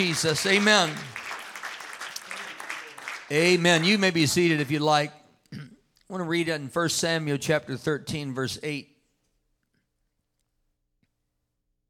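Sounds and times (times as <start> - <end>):
speech: 0.0 - 1.2, 3.3 - 5.2, 6.1 - 8.9
crowd clapping hands in steady dense applause: 0.0 - 4.8.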